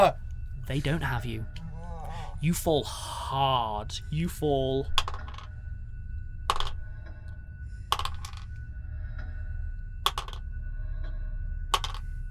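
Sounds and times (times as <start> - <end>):
speech: 0.0 - 1.6, 2.4 - 5.1
low rumble: 0.0 - 12.2
dice clattering and rattling onto a hard surface: 5.0 - 5.5, 6.5 - 6.8, 7.9 - 8.4, 10.1 - 10.4, 11.8 - 12.0.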